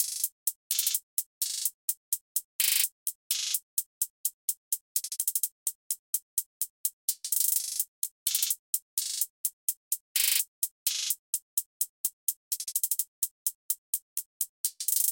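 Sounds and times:
hi-hats: 0.0s - 15.0s.

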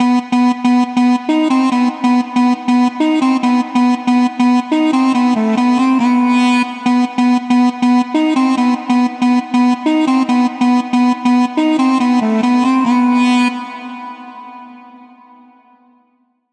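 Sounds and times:
synth flute at 140 BPM: 0.0s - 16.1s.

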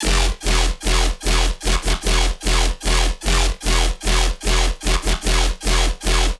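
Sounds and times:
bass loop in E at 150 BPM: 0.0s - 6.3s.

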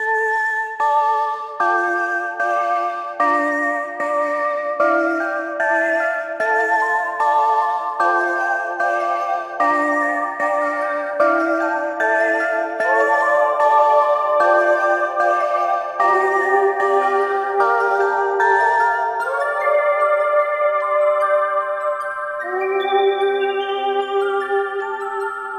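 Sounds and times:
sad synth music in D minor at 150 BPM: 0.0s - 25.5s.

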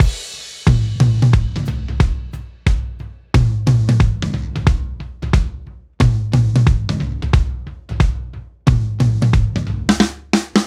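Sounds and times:
drum beat: 0.0s - 10.6s.

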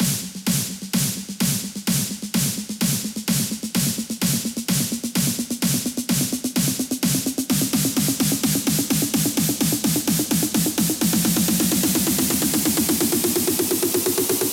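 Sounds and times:
drums building up: 0.0s - 14.5s.

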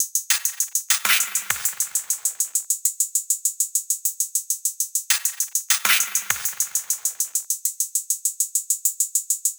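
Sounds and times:
drum loop at 100 BPM: 0.3s - 2.6s, 5.1s - 7.4s.

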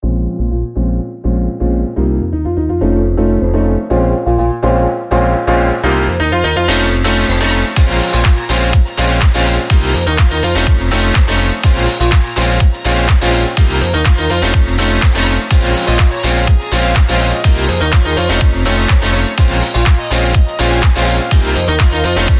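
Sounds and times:
pop piano house music: 0.0s - 22.3s.

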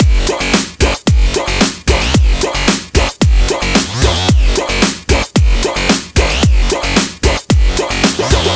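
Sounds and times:
music loop: 0.0s - 8.5s.

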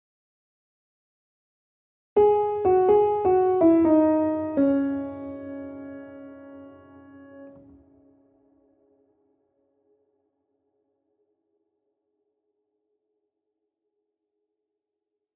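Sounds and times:
piano chords loop at 125 BPM in A: 2.2s - 7.8s.

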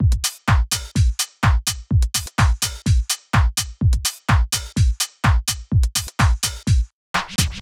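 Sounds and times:
full drum loop: 0.0s - 7.5s.

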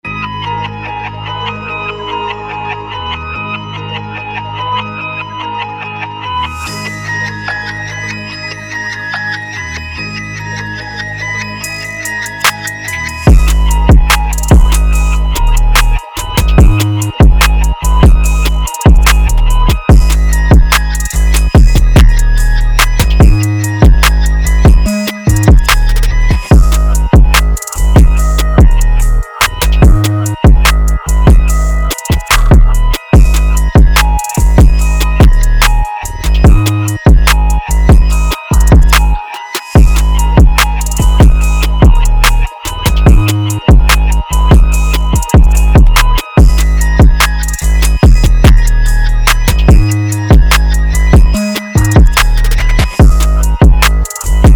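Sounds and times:
trap drum kit: 11.6s - 54.5s.

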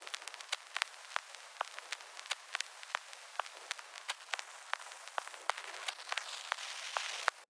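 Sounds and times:
dance drum kit beat on vinyl: 0.0s - 7.4s.

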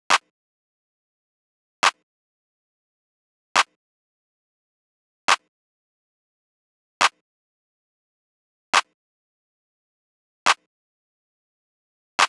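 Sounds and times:
clap sample: 0.1s - 0.3s, 1.8s - 2.0s, 3.6s - 3.8s, 5.3s - 5.5s, 7.0s - 7.2s, 8.8s - 9.0s, 10.5s - 10.7s.

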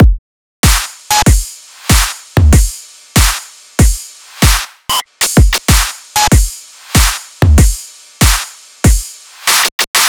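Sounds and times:
full drum kit: 0.0s - 10.0s.

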